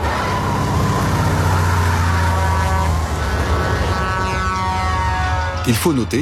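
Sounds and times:
car engine roaring during a truck chase: 0.0s - 6.2s
speech: 5.6s - 6.2s.

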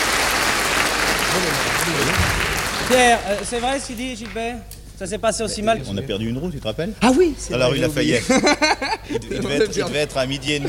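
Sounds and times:
audience applause: 0.0s - 3.9s
speech: 1.4s - 10.6s
laughter: 8.0s - 10.6s.

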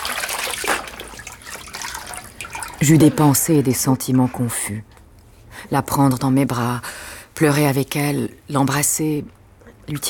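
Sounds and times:
water pouring and splashing while rinsing a standing person on a tiled floor: 0.0s - 3.0s
speech: 2.8s - 4.9s, 5.7s - 10.0s.

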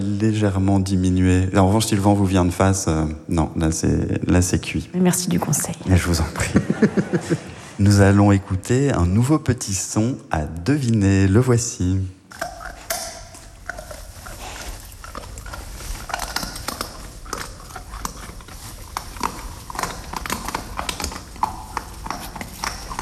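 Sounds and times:
speech: 0.0s - 12.5s
laughter: 6.3s - 7.8s
wild boar eating acorns: 12.3s - 23.0s.

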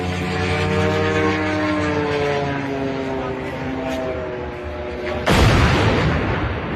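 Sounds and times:
drone engine droning hum with layered engine tones: 0.0s - 6.7s
drone crashing into a huge construction crane in the Moscow suburbs: 5.2s - 6.7s.

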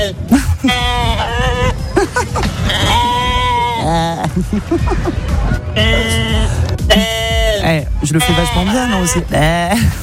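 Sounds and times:
speech: 0.0s - 0.9s, 3.9s - 10.0s
sheep bleating: 0.0s - 1.8s, 2.6s - 3.9s, 5.8s - 9.4s
laughter: 0.3s - 7.2s.

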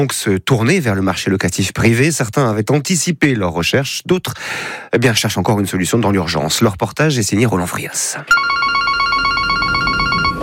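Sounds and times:
speech: 0.0s - 8.8s
telephone ringing in a downtown real estate agency: 8.3s - 10.4s.

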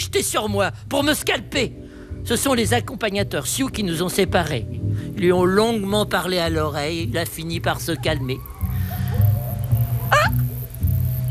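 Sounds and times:
speech: 0.1s - 8.5s
coyote yipping: 7.3s - 11.2s.

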